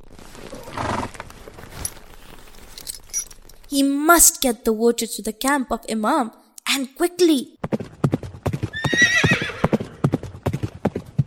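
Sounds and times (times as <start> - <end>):
horse sounds as a rider mounts and sets off: 0.0 - 1.4, 7.6 - 11.2
speech: 3.7 - 7.8.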